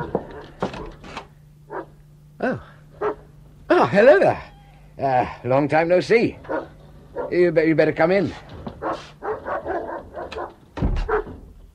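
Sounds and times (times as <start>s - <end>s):
hound barking: 1.7s - 2.0s, 3.0s - 3.3s, 6.4s - 7.4s, 8.8s - 11.4s
speech: 2.4s - 2.7s, 3.8s - 6.5s, 7.3s - 8.5s.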